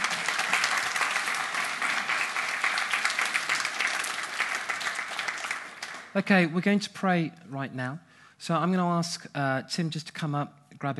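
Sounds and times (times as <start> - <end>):
audience applause: 0.0 - 6.2
speech: 6.2 - 10.9.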